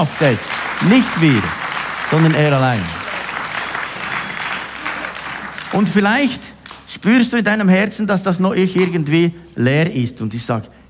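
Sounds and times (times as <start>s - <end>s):
speech: 0.0s - 3.0s, 5.7s - 10.8s
congregation applauding: 0.0s - 6.9s.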